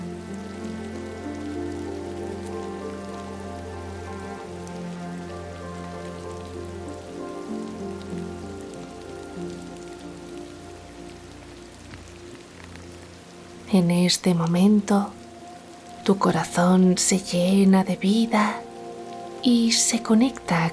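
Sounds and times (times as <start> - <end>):
soft sustained tonal drone: 0.0 - 20.7
steady rain pattering: 0.0 - 20.7
speech: 13.7 - 15.2, 16.0 - 18.6, 19.4 - 20.7.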